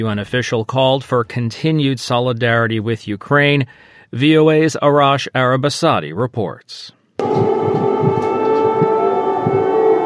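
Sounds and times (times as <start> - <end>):
speech: 0.0 - 7.0
air raid siren blaring in Kyiv Ukraine during a drone attack: 7.2 - 10.0.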